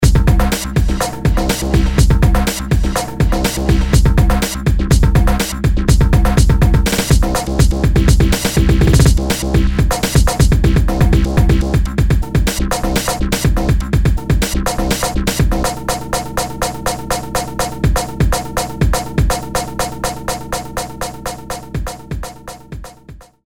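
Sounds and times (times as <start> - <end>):
beat mashing effect: 0.0 - 23.0.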